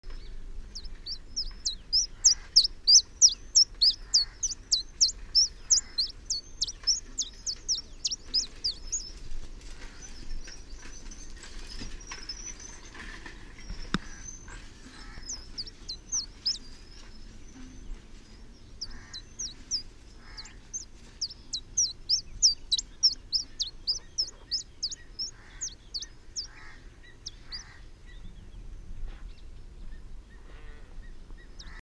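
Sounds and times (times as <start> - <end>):
tristis song in India: 0.0 - 31.8.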